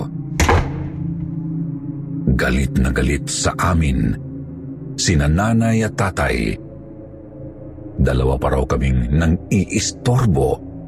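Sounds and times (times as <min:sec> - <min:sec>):
steady hum: 0:00.0 - 0:10.8
door slamming shut: 0:00.4 - 0:01.2
speech: 0:02.4 - 0:04.2, 0:05.0 - 0:06.6, 0:08.0 - 0:10.7.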